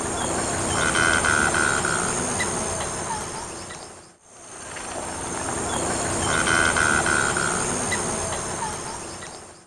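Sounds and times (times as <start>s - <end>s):
Anhinga anhinga call in the Eastern Lowlands of South America: 0.2s - 3.8s, 5.7s - 9.3s.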